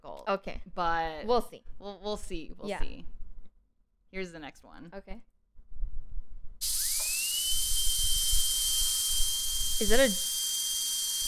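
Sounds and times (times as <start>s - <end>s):
speech: 0.3s - 3.2s, 4.1s - 5.3s, 9.8s - 10.3s
drill whirring: 6.6s - 11.2s.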